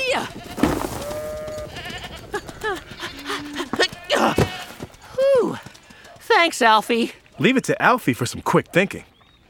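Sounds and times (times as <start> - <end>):
speech: 0.1 - 0.4, 6.4 - 9.1
soft rustling: 0.3 - 1.7
goats bleating while eating: 0.3 - 4.9.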